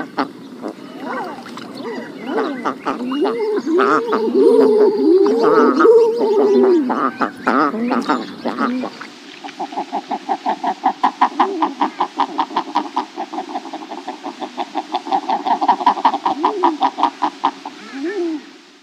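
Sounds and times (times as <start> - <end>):
king eider clucking calls: 0.0 - 17.6
king eider low arched cooing notes: 0.6 - 9.0, 16.4 - 16.9.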